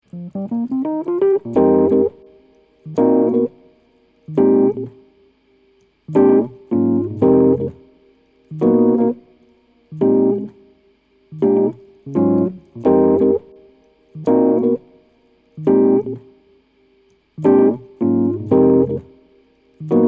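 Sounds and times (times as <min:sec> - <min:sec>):
hip hop keys: 0:00.0 - 0:03.7, 0:04.3 - 0:05.0, 0:06.1 - 0:07.8, 0:08.5 - 0:09.2, 0:11.4 - 0:14.8, 0:17.4 - 0:19.2, 0:19.8 - 0:20.0.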